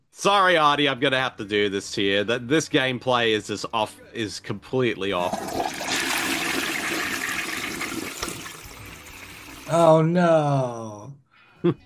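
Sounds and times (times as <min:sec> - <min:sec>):
speech: 0:00.2 - 0:05.8, 0:09.7 - 0:11.8
toilet flushing with swirling water: 0:05.2 - 0:09.8.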